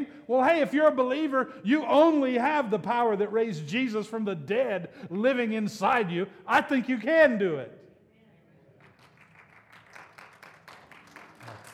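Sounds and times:
speech: 0.3 - 7.8
soft sparse golf clap from a small audience: 8.8 - 11.7.

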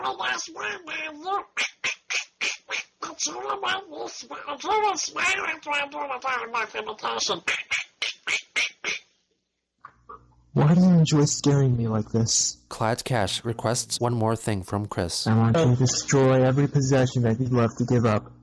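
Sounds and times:
person doing a cartoon duck voice impersonation: 0.0 - 9.1, 12.8 - 15.3
speech: 0.1 - 1.7, 3.2 - 7.6, 10.6 - 18.4.

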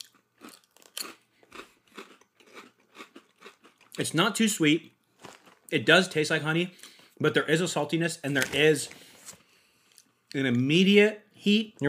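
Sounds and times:
honey habanero Ruffles potato chips being bitten and chewed: 0.0 - 4.2, 5.1 - 5.8
speech: 4.0 - 5.0, 5.7 - 9.0, 10.3 - 11.8.

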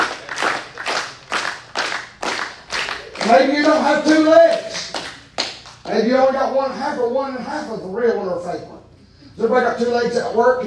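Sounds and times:
people clapping with both hands at a worship gathering: 0.0 - 6.0
speech: 3.3 - 4.7, 5.9 - 8.8, 9.4 - 10.6.

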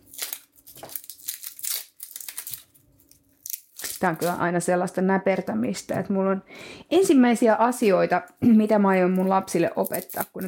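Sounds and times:
dry onion skins crackling as they are peeled: 0.0 - 4.6, 7.8 - 10.4
speech: 4.0 - 10.4.

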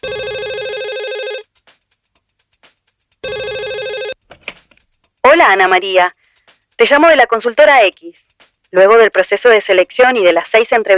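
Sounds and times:
telephone with electronic multi-tone ring ringing: 0.0 - 1.5, 3.2 - 4.2
speech: 5.3 - 6.2, 6.8 - 10.9.

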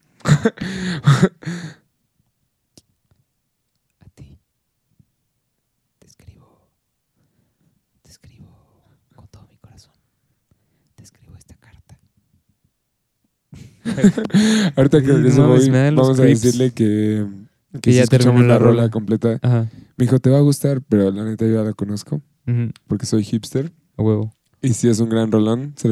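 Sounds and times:
speech: 0.4 - 1.8, 13.8 - 25.9
person whispering into the microphone ASMR-style: 4.0 - 4.4, 6.0 - 6.8, 8.0 - 10.0, 11.0 - 12.2
laughter: 13.6 - 16.6.

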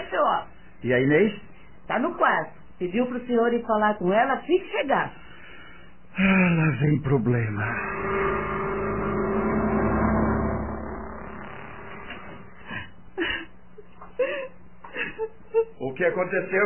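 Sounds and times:
speech: 0.8 - 5.2, 6.2 - 8.5, 15.2 - 16.6
steady engine-like rumble: 7.6 - 12.7
woman crying in short broken sobs and whimpers: 12.7 - 15.8.

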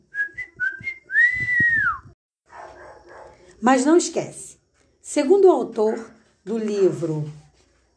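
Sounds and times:
person whistling: 0.1 - 2.2
soft rough sound: 0.1 - 7.9
speech: 3.6 - 4.5, 5.1 - 7.4.

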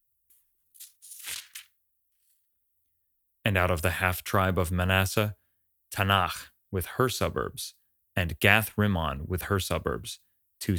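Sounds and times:
paper book page turning: 0.8 - 1.8
speech: 3.4 - 10.7.

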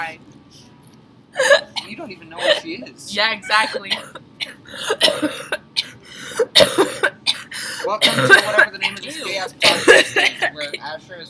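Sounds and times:
exaggerated theatrical wet hacking coughs: 1.4 - 2.8, 3.5 - 10.8
speech: 2.0 - 5.6, 7.9 - 11.2.

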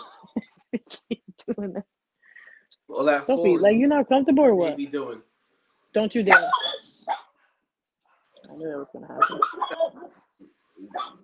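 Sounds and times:
speech: 1.6 - 1.9, 3.0 - 5.3, 6.0 - 6.6, 8.6 - 10.2
dog whimpering and yelping: 6.3 - 6.8, 9.2 - 10.1
dog barking in short uneven bursts: 6.3 - 7.3, 9.2 - 10.2, 10.9 - 11.2.

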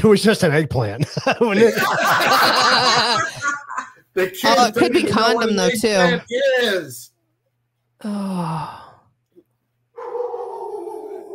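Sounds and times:
speech: 0.0 - 3.6, 4.2 - 7.1, 8.0 - 8.8
laughter: 1.0 - 6.3
dogs barking: 10.0 - 11.3.

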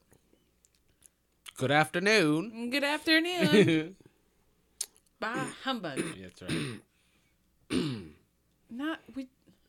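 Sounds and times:
speech: 1.6 - 4.0, 5.2 - 6.9, 8.8 - 9.4
person clearing their throat in a rough raspy burst: 5.4 - 6.9, 7.7 - 8.2
throaty voiced cough-like rasp: 5.4 - 6.9, 7.7 - 8.2.

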